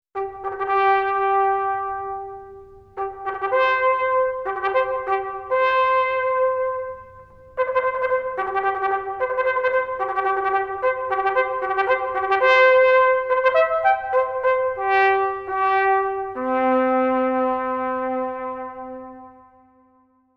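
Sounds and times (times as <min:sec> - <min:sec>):
natural trumpet: 0:00.2 - 0:20.3.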